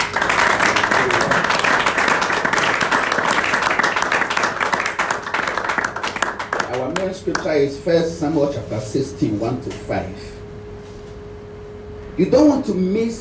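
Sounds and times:
large crowd applauding at a church service: 0.0s - 7.4s
speech: 7.2s - 10.4s, 12.2s - 13.1s.

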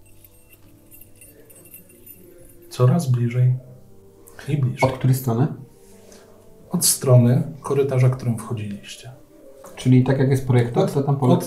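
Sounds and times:
keys jangling carried by someone walking along a corridor: 0.0s - 2.8s
speech: 2.8s - 3.7s, 4.4s - 5.6s, 6.8s - 9.2s, 9.8s - 11.4s.

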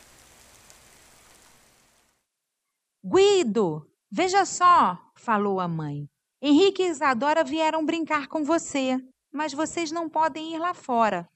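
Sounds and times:
steady rain with dense hissing patter: 0.0s - 2.2s
speech: 3.1s - 11.3s.

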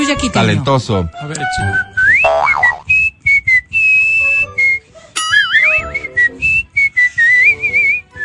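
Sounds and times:
speech: 0.1s - 2.6s
person whistling a lively traditional melody: 1.7s - 8.2s.

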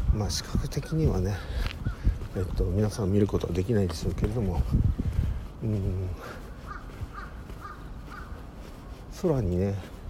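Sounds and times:
speech: 0.2s - 1.8s, 2.4s - 5.0s, 5.6s - 6.4s, 9.2s - 9.9s
crow cawing in a park in Sapporo: 6.4s - 8.4s.

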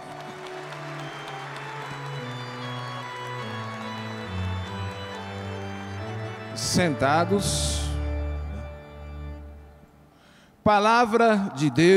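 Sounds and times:
audience clapping in a church sanctuary welcoming the Gospel reading: 0.0s - 8.6s
sustained organ or keyboard chords: 0.0s - 10.4s
speech: 6.6s - 7.8s, 10.7s - 11.9s.

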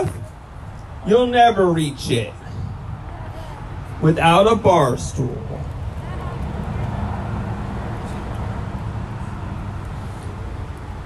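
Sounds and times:
road traffic rumble of passing vehicles: 0.0s - 11.0s
speech: 1.0s - 2.4s, 4.0s - 5.7s.

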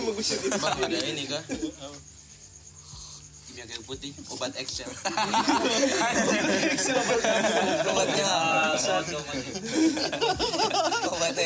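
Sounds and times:
laughter: 0.0s - 2.0s, 4.9s - 11.4s
speech: 0.2s - 2.2s, 3.5s - 11.4s
mosquito buzzing: 2.0s - 3.6s.

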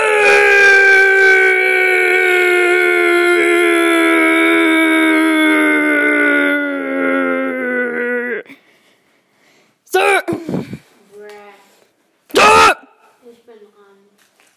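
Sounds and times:
person screaming one long syllable: 0.0s - 8.5s, 9.9s - 10.6s, 12.3s - 12.9s
breathy vocal noise: 0.0s - 8.8s.

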